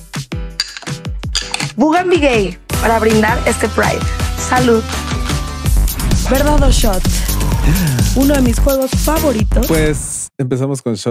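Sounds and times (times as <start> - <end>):
glassware clinking as a blended frappé drink with ice is served: 0.6 - 1.7
speech: 1.8 - 5.0, 6.3 - 11.0.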